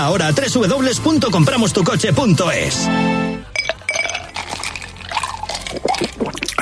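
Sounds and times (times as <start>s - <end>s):
speech: 0.0s - 3.5s
ice cubes clinking against the glass: 3.6s - 6.2s
cold drink pouring into a glass over ice: 3.6s - 6.6s.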